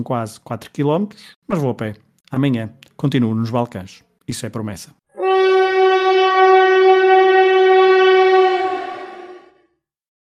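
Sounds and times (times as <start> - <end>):
speech: 0.0 - 5.0
passenger train horn blast: 5.1 - 9.7.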